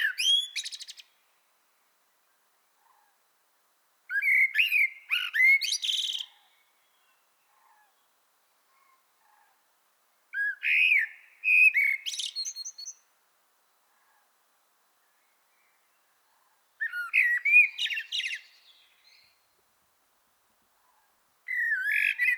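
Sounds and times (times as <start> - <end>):
common blackbird singing, Turdus merula: 0.0 - 1.1, 4.1 - 7.2, 10.4 - 13.0, 16.8 - 19.4, 21.5 - 22.3.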